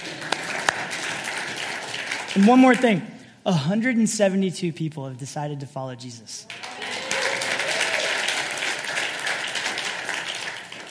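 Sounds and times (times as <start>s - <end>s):
church audience applauding: 0.0s - 2.8s, 6.5s - 10.8s
speech: 2.3s - 6.6s.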